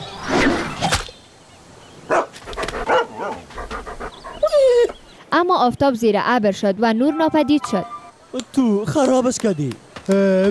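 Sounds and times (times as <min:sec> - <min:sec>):
dog giving short sharp barks: 0:02.1 - 0:05.0
dog panting quickly and excitedly: 0:02.4 - 0:05.1
speech: 0:05.4 - 0:10.4.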